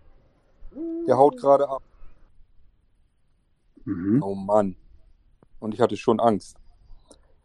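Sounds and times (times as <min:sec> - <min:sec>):
eagle-owl hooting at the back of a tour coach: 0:00.7 - 0:01.8
speech: 0:01.1 - 0:01.9, 0:03.9 - 0:04.8, 0:05.6 - 0:06.6.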